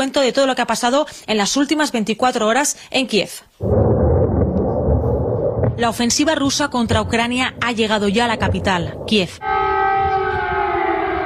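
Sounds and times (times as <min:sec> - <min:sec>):
speech: 0:00.0 - 0:04.0, 0:05.8 - 0:09.6
low rumble: 0:03.6 - 0:10.4
air raid siren wailing: 0:08.0 - 0:11.2.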